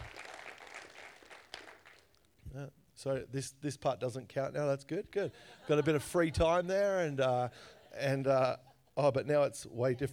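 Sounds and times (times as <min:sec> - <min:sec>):
crowd applauding: 0:00.0 - 0:02.2
sharp clap: 0:00.0 - 0:02.2
speech: 0:02.5 - 0:10.1.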